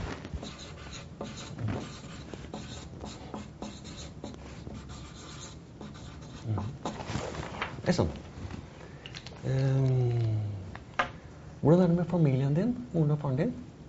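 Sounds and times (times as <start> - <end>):
pen writing on paper: 0.3 - 7.1
speech: 7.9 - 8.2, 9.4 - 10.3, 11.6 - 13.6.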